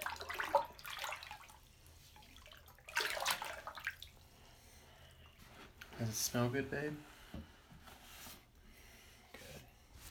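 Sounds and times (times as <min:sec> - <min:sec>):
bathwater swishing as bubble bath is stirred into a filled tub: 0:00.0 - 0:04.6
speech: 0:06.0 - 0:07.4.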